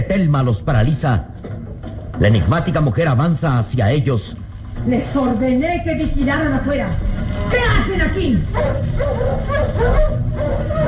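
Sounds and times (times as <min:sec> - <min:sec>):
speech: 0:00.1 - 0:01.4, 0:02.2 - 0:10.8
nervous wolf giving agitated yips and whimpering barks: 0:08.5 - 0:10.8.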